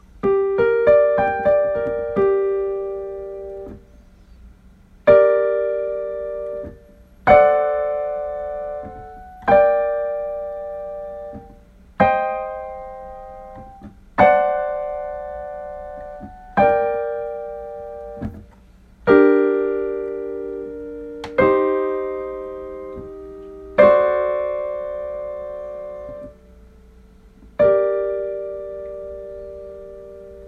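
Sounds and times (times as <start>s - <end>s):
chords: 0.0s - 30.4s.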